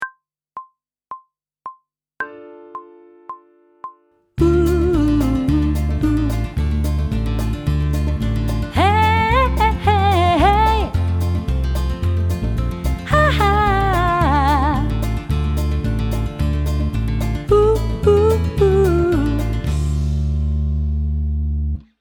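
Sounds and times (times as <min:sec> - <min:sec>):
pop vocals: 0:04.4 - 0:06.6, 0:08.7 - 0:11.0, 0:13.0 - 0:15.0, 0:17.5 - 0:19.7
guitar riffs in D minor: 0:04.4 - 0:21.8.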